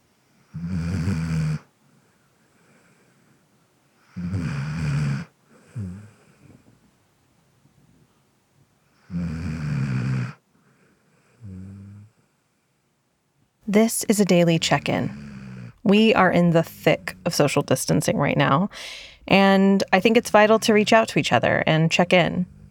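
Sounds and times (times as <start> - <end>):
pet snoring: 0.4 - 1.7, 4.0 - 6.7, 9.0 - 12.3, 13.8 - 22.6
speech: 13.7 - 15.3, 15.9 - 22.6.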